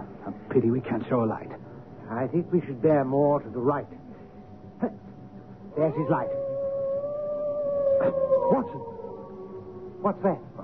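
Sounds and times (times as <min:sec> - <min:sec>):
speech: 0:00.3 - 0:04.0, 0:04.8 - 0:05.1, 0:05.8 - 0:06.4, 0:08.0 - 0:08.9, 0:10.0 - 0:10.6
hound howling on a pitch-black moor at night: 0:05.7 - 0:10.6.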